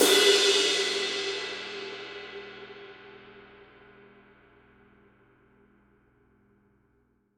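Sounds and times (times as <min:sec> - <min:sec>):
light 20-inch ride cymbal edge hit: 0:00.0 - 0:03.4.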